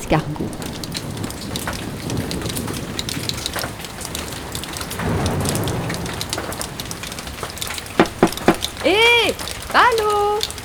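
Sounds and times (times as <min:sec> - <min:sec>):
steady rain pouring down: 0:00.0 - 0:10.6
speech: 0:00.1 - 0:00.7.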